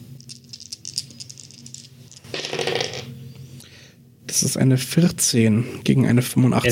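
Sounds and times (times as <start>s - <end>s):
dice rolling for an intelligence check: 0.2s - 3.1s
speech: 4.3s - 6.7s.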